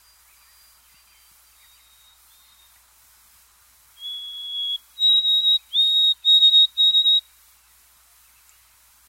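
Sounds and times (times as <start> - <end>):
bird giving pure whistled notes: 4.0 - 7.3.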